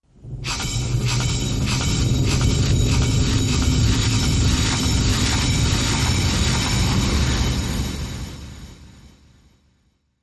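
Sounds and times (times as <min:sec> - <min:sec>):
torque averter winch machine running: 0:00.5 - 0:07.2.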